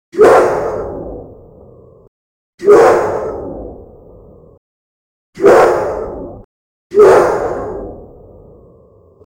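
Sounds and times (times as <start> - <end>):
wolf attack sound effect: 0.2 - 1.0, 2.6 - 3.4, 5.4 - 6.2, 6.9 - 8.0.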